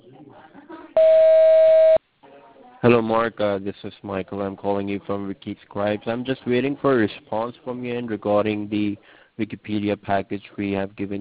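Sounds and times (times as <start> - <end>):
voicemail recording tone beep: 1.0 - 2.0
speech: 2.8 - 11.1.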